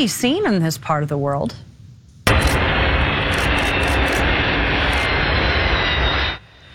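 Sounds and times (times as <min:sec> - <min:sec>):
speech: 0:00.0 - 0:01.7
Antonov 124 cargo aircraft engines roaring: 0:02.3 - 0:06.7.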